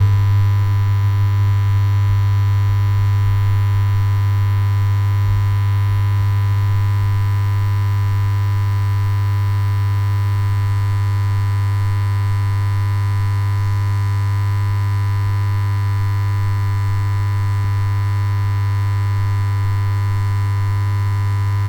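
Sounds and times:
industrial neon light buzz: 0.0 - 21.6.

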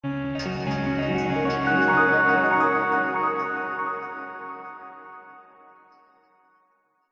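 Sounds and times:
fantasy magical musical glissando: 0.4 - 5.6.

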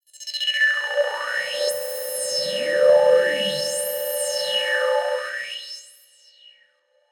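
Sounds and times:
pulsating stutter high-pitched synth: 0.8 - 5.6.

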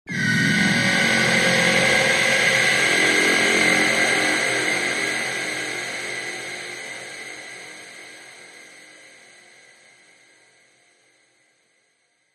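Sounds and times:
evil sinister ghostly haunting horror strings swell: 0.1 - 8.8.

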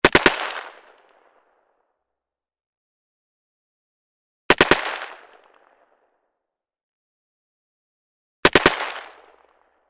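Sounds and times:
Swedish Carl Gustav M45 submachine gun firing: 0.0 - 1.0, 8.4 - 9.5.

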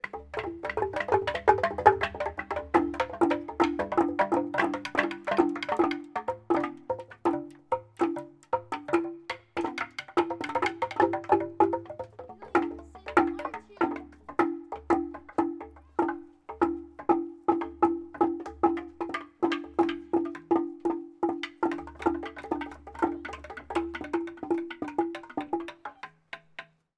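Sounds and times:
large xylophone playing in a forest in Scotland: 0.0 - 26.2
children playing in a forest in Scotland: 12.2 - 14.2, 22.5 - 23.7
children chatting in a forest in Scotland: 12.2 - 14.3, 22.9 - 23.6.

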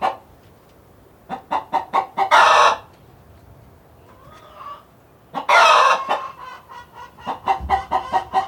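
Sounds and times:
chickens clucking inside a hen house on a farm: 0.0 - 0.3, 1.2 - 3.0, 4.0 - 8.4.

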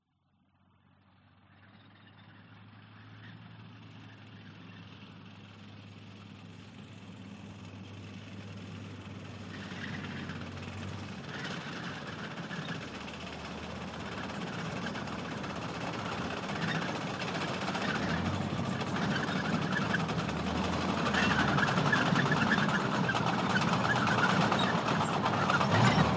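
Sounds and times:
1939 Matilda Mark 2 tank revving and passing by close: 8.2 - 26.1.

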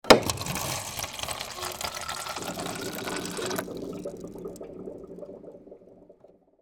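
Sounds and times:
office water dispenser dispensing into plastic cup: 0.1 - 5.1.

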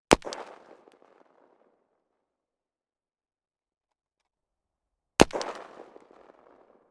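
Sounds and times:
1917 gun: 0.1 - 1.6, 5.2 - 6.8.

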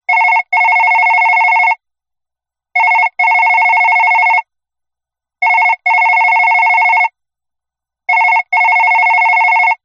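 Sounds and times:
telephone ringing: 0.1 - 1.8, 2.8 - 4.4, 5.4 - 7.1, 8.1 - 9.8.

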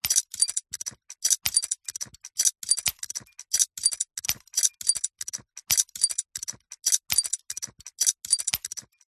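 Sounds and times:
science fiction steampunk gears turning fast: 0.0 - 9.0.

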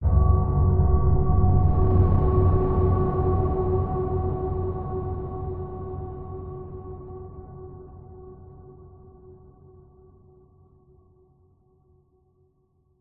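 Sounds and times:
dark ominous scary horror hit: 0.0 - 6.2.

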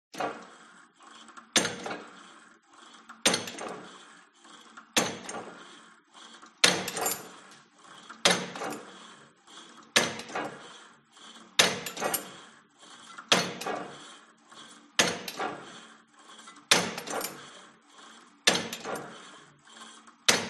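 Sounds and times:
gym cable machine pulling and dropping: 0.2 - 0.6, 1.3 - 2.2, 3.1 - 4.1, 5.0 - 5.7, 6.6 - 9.0, 9.7 - 10.7, 11.6 - 12.4, 13.1 - 14.0, 14.6 - 15.8, 16.4 - 17.6, 18.5 - 19.3, 20.3 - 20.4.

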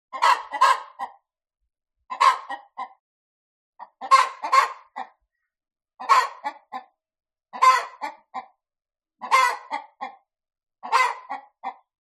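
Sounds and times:
cockerel clucking: 0.1 - 1.2, 2.1 - 3.0, 3.8 - 5.2, 6.0 - 6.9, 7.6 - 8.6, 9.2 - 10.2, 10.8 - 11.9.

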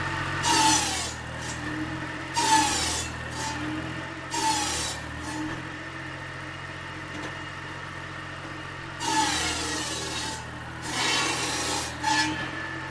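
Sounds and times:
chainsaw cutting wood: 0.1 - 5.8, 9.0 - 12.8.

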